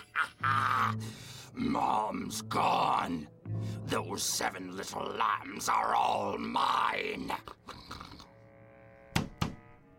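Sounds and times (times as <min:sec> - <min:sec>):
speech: 0:00.2 - 0:08.1
firm knocking on a door: 0:09.2 - 0:09.6.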